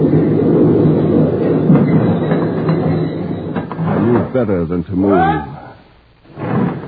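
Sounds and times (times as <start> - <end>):
train rumbling past with rolling wheels: 0.0 - 4.9
speech: 4.4 - 5.5.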